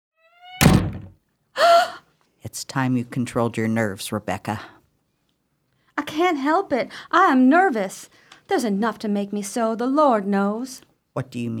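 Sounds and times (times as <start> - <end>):
stiff swollen wooden door squealing as it is forced closed: 0.3 - 1.2
heavy wooden door thud: 0.6 - 1.2
speech: 2.5 - 4.8, 6.2 - 11.5.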